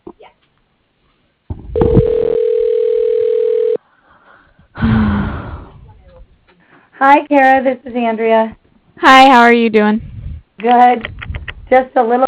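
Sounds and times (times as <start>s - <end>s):
telephone ringback tone on a business line: 1.8s - 3.8s
breathy voice sound: 3.9s - 6.0s
speech: 7.0s - 12.2s.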